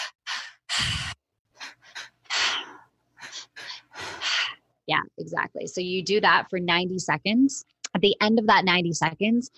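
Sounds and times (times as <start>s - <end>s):
forceful inhales and exhales through the mouth: 0.0s - 4.6s
speech: 4.9s - 9.5s.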